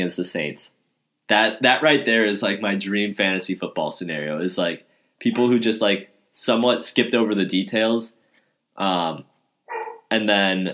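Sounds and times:
speech: 0.0s - 8.2s, 8.8s - 9.3s, 10.1s - 10.7s
dog barking loudly: 9.7s - 10.1s.

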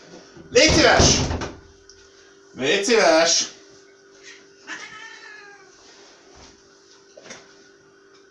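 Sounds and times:
speech: 0.8s - 1.4s, 2.6s - 3.6s
cat meowing indoors: 4.6s - 5.8s.

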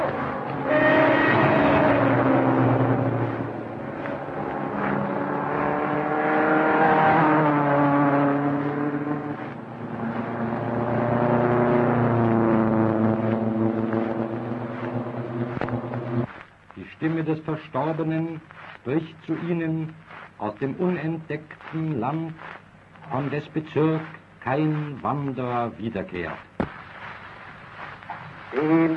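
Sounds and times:
racing car engines on the Nürburgring race track: 0.0s - 16.3s
speech: 17.5s - 22.5s, 23.1s - 26.5s.

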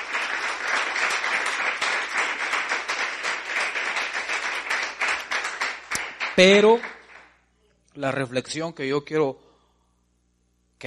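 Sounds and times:
church congregation applauding during a sermon: 0.0s - 7.4s
speech: 6.4s - 6.9s, 8.0s - 9.4s.

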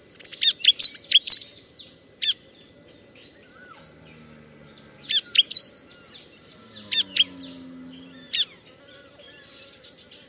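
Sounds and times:
bar-winged prinia singing bright, high chirps: 0.0s - 10.2s
constant high hiss: 0.0s - 10.2s
faint low hum: 3.0s - 10.2s.

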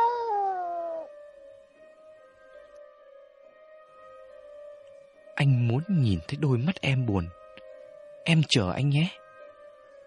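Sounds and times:
cat meowing in a hallway: 0.0s - 1.2s
speech: 5.4s - 7.4s, 8.2s - 9.2s.

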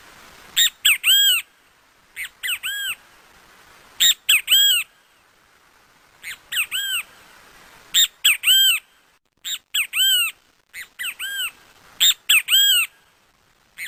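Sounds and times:
Great kiskadee calling outdoors in Parque Avellaneda: 0.6s - 1.5s, 2.2s - 3.0s, 4.0s - 5.0s, 6.2s - 7.2s, 7.9s - 13.1s.

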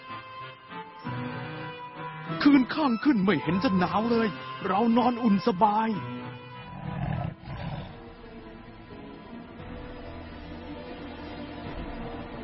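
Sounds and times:
speech: 2.4s - 6.2s
tiger roaring in a forest: 6.6s - 8.1s.

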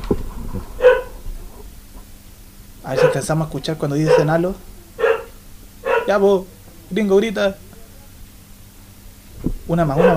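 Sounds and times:
pet dog barking indoors: 0.8s - 1.2s, 2.9s - 3.4s, 4.0s - 6.2s, 9.9s - 10.1s
speech: 2.9s - 4.7s, 6.1s - 7.6s, 9.7s - 10.1s.

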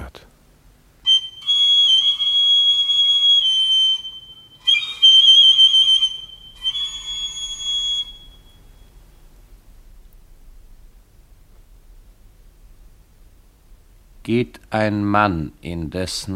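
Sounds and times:
whistle blown for help: 1.0s - 9.0s
speech: 14.3s - 16.3s.

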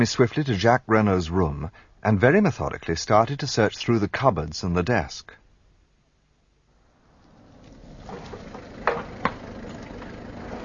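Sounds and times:
speech: 0.0s - 5.4s
car pulling up and engine idling: 6.8s - 10.6s.

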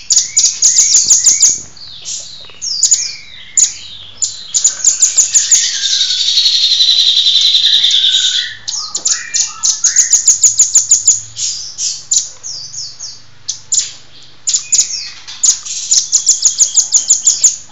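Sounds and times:
songbird singing trills, whistled notes and high chips: 0.0s - 17.6s.

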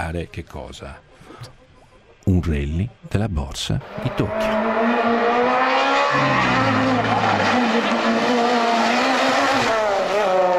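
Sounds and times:
speech: 0.0s - 1.6s, 2.3s - 5.5s, 6.1s - 8.4s
car accelerating hard: 3.8s - 10.5s.

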